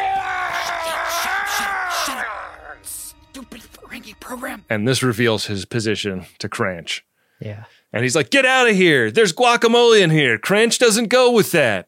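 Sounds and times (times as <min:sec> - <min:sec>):
Klingon warrior deep guttural scream from a game: 0:00.0 - 0:03.1
speech: 0:04.7 - 0:11.8.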